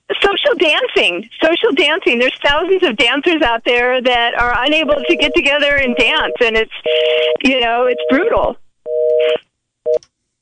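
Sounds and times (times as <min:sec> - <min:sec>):
speech: 0:00.5 - 0:08.6
telephone busy signal on a dropped radio call-in line: 0:04.9 - 0:10.0.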